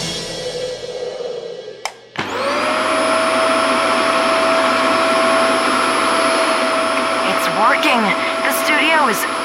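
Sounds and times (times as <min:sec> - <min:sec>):
power vacuum cleaner drying rain damage: 0:02.1 - 0:09.4.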